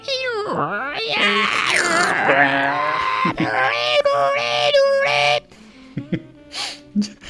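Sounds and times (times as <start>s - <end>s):
voice imitating dial-up modem connecting: 0.3s - 5.5s
laughter: 2.2s - 5.4s, 6.0s - 6.4s.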